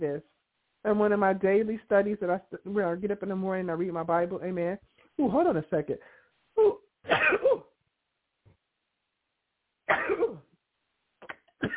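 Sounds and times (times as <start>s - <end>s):
speech: 0.0s - 7.5s
person sneezing: 6.6s - 7.7s.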